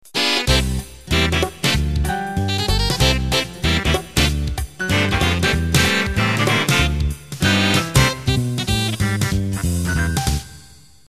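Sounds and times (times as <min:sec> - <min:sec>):
ballroom swing intro music: 0:00.0 - 0:10.6.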